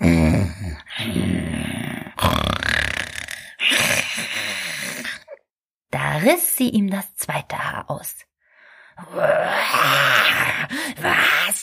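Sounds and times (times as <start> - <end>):
voice imitating the devil's loud snoring: 0.0 - 5.4, 9.0 - 11.5
speech: 6.2 - 8.3, 9.0 - 11.6.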